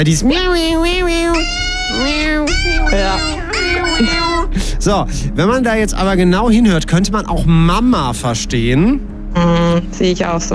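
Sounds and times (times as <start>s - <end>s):
speech: 0.0s - 10.5s
dog making drawn-out wailing meow-like cries: 0.4s - 4.5s.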